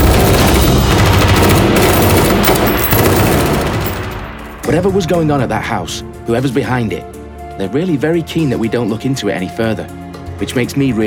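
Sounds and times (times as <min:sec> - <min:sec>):
automatic gunfire: 0:00.0 - 0:04.5
speech: 0:04.7 - 0:11.0.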